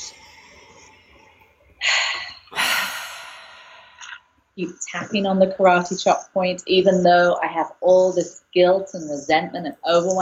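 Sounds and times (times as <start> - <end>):
person taking deep breaths during a guided tapping relaxation exercise: 1.8 - 4.1
speech: 4.6 - 10.2.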